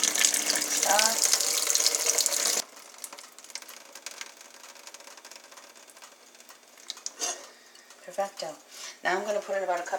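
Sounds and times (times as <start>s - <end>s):
water draining from a pot of rinsed quinoa: 0.0s - 7.8s
speech: 9.1s - 9.9s.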